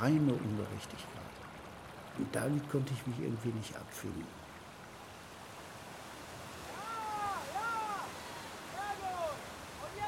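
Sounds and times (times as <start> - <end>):
speech: 0.0 - 1.4, 2.2 - 4.4
canoes moving through choppy river water with waves splashing: 0.0 - 10.0
drawn-out rising-and-falling tonal cries: 6.7 - 9.4.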